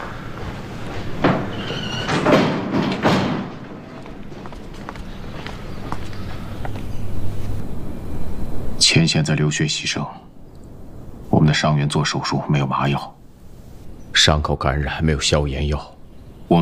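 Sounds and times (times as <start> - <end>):
shuffling footsteps: 0.0 - 7.9
low room noise: 0.0 - 16.6
door being shut with dull thuds: 1.0 - 5.2
speech: 9.0 - 10.3, 11.4 - 13.2, 14.2 - 15.9, 16.5 - 16.6.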